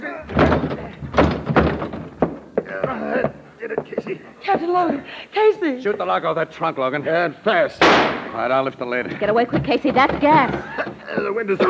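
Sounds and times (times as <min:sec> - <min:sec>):
rattling and scraping: 0:00.3 - 0:02.6, 0:09.0 - 0:11.4
heavy thuds of a door being battered open: 0:00.3 - 0:03.0, 0:09.2 - 0:11.3
speech: 0:04.5 - 0:11.6.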